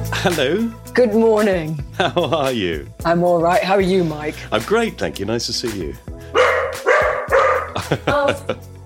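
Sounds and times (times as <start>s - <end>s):
speech: 0.2s - 6.1s, 7.9s - 8.7s
laughter: 2.0s - 2.6s, 7.6s - 8.7s
dog barking: 6.3s - 7.9s.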